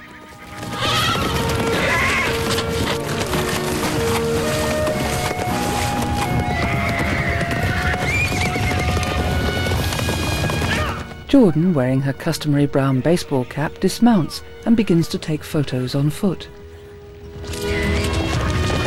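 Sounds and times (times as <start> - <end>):
mustangs whinnying: 0.0 - 11.3, 17.3 - 18.8
herd of mustangs galloping across a river: 0.0 - 12.4, 14.9 - 18.8
speech: 11.4 - 16.6.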